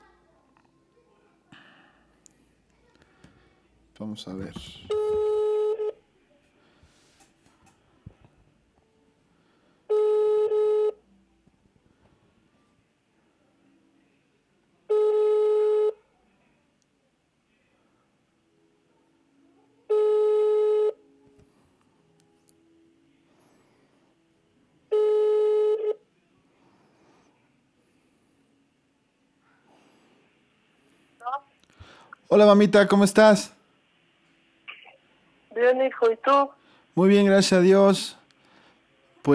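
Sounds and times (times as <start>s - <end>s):
speech: 4.0s - 5.1s, 32.4s - 33.6s, 36.3s - 38.2s
telephone ringback tone on an outgoing call: 4.9s - 6.0s, 9.9s - 11.0s, 14.9s - 16.0s, 19.9s - 21.0s, 24.9s - 26.0s.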